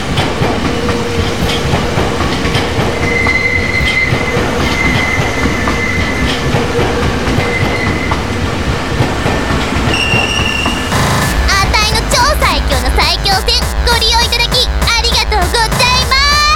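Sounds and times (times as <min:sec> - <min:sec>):
commuter train brakes squealing: 0:00.0 - 0:11.0
commuter train wheels rumbling on rails at station platform: 0:00.0 - 0:16.5.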